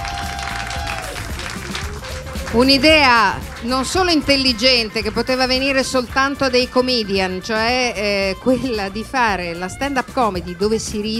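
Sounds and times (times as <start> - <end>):
audience applause at a stand-up comedy benefit evening: 0.0 - 4.7
speech: 2.5 - 11.1.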